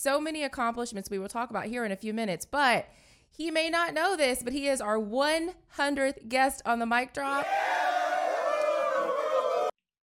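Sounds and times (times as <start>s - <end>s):
speech: 0.0s - 7.8s
canned crowd cheering sound effect: 7.4s - 9.8s.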